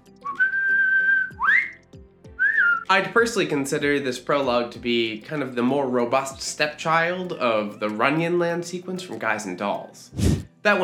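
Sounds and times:
faint low instrumental background: 0:00.0 - 0:10.8
whistled two-note tritone motif opening a stage musical: 0:00.2 - 0:02.9
speech: 0:02.9 - 0:10.8.

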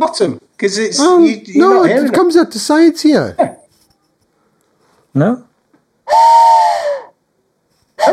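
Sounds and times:
speech: 0:00.0 - 0:03.5, 0:05.2 - 0:05.5
loud breathy train whistle blasts: 0:06.0 - 0:07.2.

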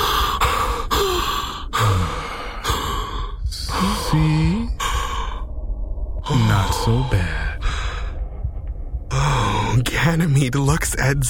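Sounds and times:
person gasping while falling to the floor: 0:00.0 - 0:05.5, 0:06.4 - 0:08.4
strained sighing breaths: 0:00.0 - 0:09.8
speech: 0:04.1 - 0:04.6, 0:06.8 - 0:07.4, 0:10.1 - 0:11.2.

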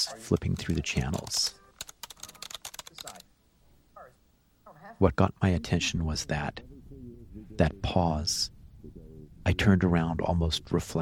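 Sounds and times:
speech: 0:00.0 - 0:01.6, 0:05.0 - 0:06.7, 0:07.4 - 0:08.6, 0:09.5 - 0:10.9
fast typing on a computer keyboard: 0:00.0 - 0:03.2.

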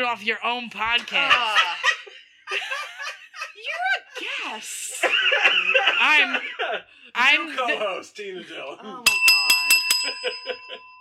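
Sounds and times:
speech: 0:00.1 - 0:02.8, 0:04.4 - 0:09.3, 0:10.0 - 0:10.9
laughter: 0:01.1 - 0:08.8
bell dinging: 0:09.1 - 0:10.9.

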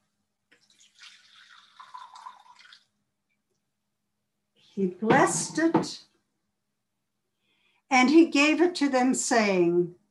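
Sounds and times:
liquid poured into a cup: 0:00.5 - 0:03.1
speech: 0:04.8 - 0:06.1, 0:07.9 - 0:10.0.

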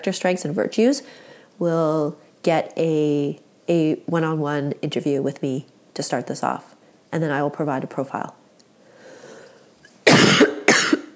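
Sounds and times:
speech: 0:00.0 - 0:08.4
harsh coughs: 0:10.0 - 0:11.1.

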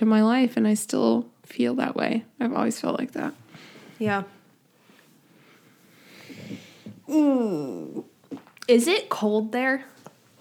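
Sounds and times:
speech: 0:00.0 - 0:03.4, 0:04.0 - 0:04.4, 0:07.1 - 0:08.1, 0:08.7 - 0:10.0
soft breathy rustling: 0:03.0 - 0:07.1, 0:09.6 - 0:10.3
person yawning: 0:07.1 - 0:08.1.

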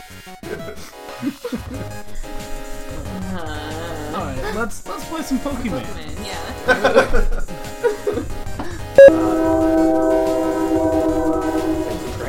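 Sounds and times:
speech: 0:00.1 - 0:08.3
people chuckling: 0:00.4 - 0:01.9, 0:06.5 - 0:08.3
passing train horn blast: 0:09.0 - 0:12.2.

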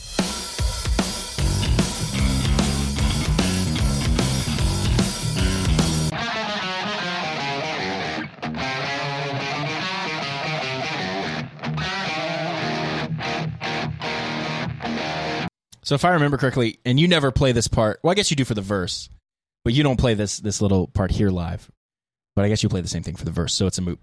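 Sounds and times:
isolated drum track from a song recording: 0:00.0 - 0:06.2
distorted electric guitar E power chord riff: 0:01.4 - 0:15.5
speech: 0:15.9 - 0:21.8, 0:22.4 - 0:24.0.

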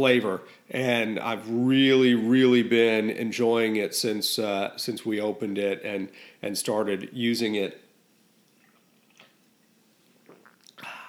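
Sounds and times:
speech: 0:00.0 - 0:07.8
soft wet mouth sounds: 0:08.5 - 0:11.0
person sipping fair trade organic Bolivian blend coffee from a travel mug: 0:10.2 - 0:11.0.

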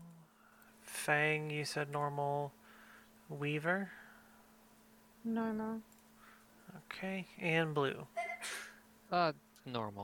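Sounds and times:
speech: 0:01.0 - 0:02.6, 0:03.3 - 0:04.0, 0:05.2 - 0:06.0, 0:06.7 - 0:08.2, 0:09.1 - 0:10.0
sneeze: 0:08.2 - 0:08.8.

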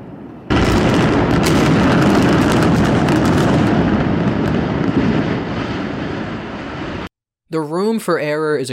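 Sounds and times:
controlled demolition explosive charges detonating: 0:00.5 - 0:07.1
speech: 0:07.5 - 0:08.7.

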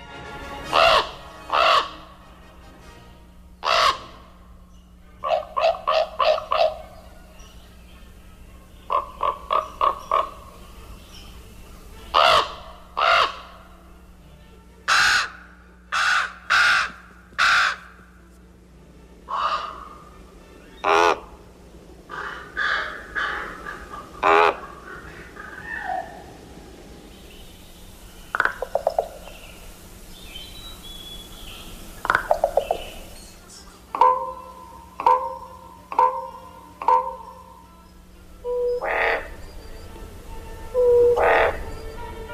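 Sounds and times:
low steady hum: 0:00.0 - 0:42.3
common raven giving deep throaty croaks and gurgling calls: 0:00.7 - 0:02.2, 0:03.6 - 0:07.6, 0:08.4 - 0:13.9, 0:14.9 - 0:18.2, 0:19.3 - 0:20.1, 0:20.8 - 0:21.4, 0:22.0 - 0:29.9, 0:31.9 - 0:33.2, 0:33.8 - 0:42.1.

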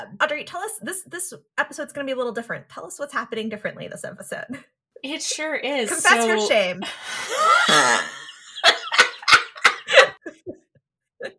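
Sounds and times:
speech: 0:00.0 - 0:08.2
strained vocal sound: 0:05.9 - 0:08.4
laughter: 0:05.9 - 0:10.6
person in a coughing fit: 0:07.3 - 0:09.0.

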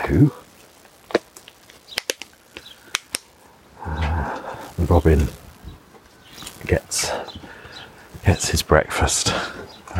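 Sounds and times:
speech: 0:00.1 - 0:00.4, 0:04.9 - 0:05.4, 0:08.3 - 0:09.9
house sparrows chirping: 0:01.8 - 0:02.9, 0:03.8 - 0:09.9.

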